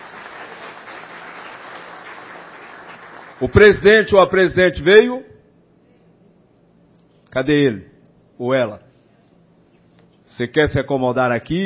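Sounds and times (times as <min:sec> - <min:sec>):
audience applause greeting council members: 0:00.0 - 0:03.6
speech: 0:03.4 - 0:05.3, 0:07.4 - 0:08.9, 0:10.3 - 0:11.6.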